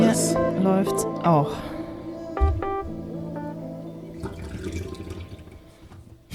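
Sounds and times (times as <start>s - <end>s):
speech: 0.2s - 1.7s
rushing water burst: 3.8s - 6.0s
water splashing and trickling into a toilet bowl: 4.1s - 6.2s.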